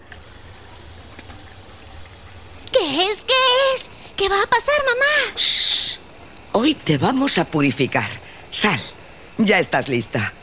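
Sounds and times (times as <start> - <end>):
water being poured for boiling: 0.0 - 2.7
speech: 4.2 - 6.0, 6.6 - 10.4.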